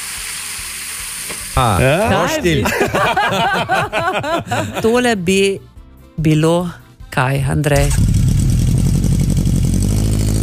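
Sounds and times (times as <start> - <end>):
laughter: 1.6 - 5.1
speech: 1.6 - 8.2
motorcycle engine revving: 7.8 - 10.4.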